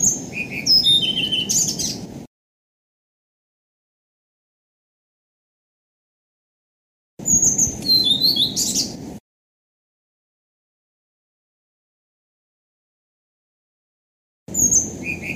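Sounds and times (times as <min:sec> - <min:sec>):
Blue-throated flycatcher song: 0:00.0 - 0:02.1, 0:07.2 - 0:09.1, 0:14.5 - 0:15.3.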